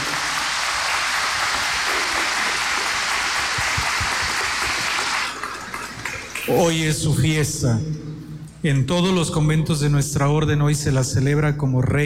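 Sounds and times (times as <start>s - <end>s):
audience applauding on a feast day: 0.0s - 6.6s
speech: 6.5s - 12.0s.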